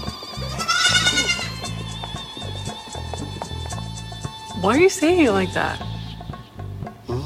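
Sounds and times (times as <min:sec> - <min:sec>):
goat bleating: 0:00.5 - 0:01.6
speech: 0:04.6 - 0:05.9.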